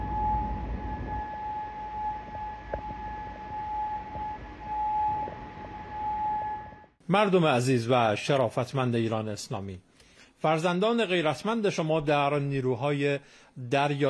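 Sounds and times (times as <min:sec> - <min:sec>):
air raid siren wailing in Bahrain during a missile strike: 0:00.0 - 0:07.0
speech: 0:07.1 - 0:14.0.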